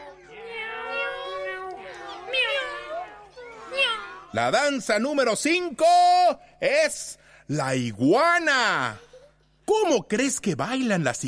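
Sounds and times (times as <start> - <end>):
cat meowing in long drawn-out wails: 0.0 - 4.3
faint low hum: 0.0 - 11.2
speech: 4.4 - 9.1, 9.7 - 11.2.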